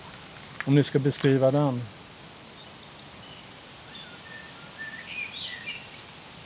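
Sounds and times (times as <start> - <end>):
steady outdoor hiss: 0.0 - 6.4
speech: 0.6 - 2.0
Eurasian blackbird singing: 2.4 - 6.4.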